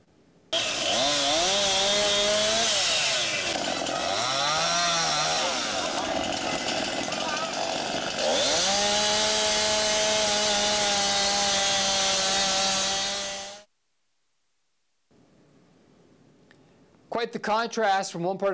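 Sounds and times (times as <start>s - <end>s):
chainsaw cutting storm-damaged trees: 0.5s - 13.7s
speech: 17.4s - 18.5s.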